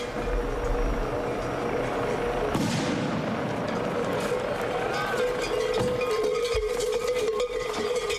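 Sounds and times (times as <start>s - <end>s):
voices: 0.1s - 2.6s, 3.3s - 8.1s
herd of bulls running up a slope during a bull run: 0.1s - 8.1s
crowd roaring during a bull run: 1.5s - 7.7s.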